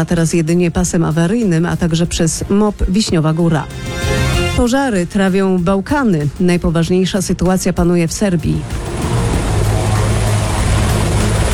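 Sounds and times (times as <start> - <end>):
speech: 0.0 - 8.8
firefighting helicopter flying: 8.6 - 11.5.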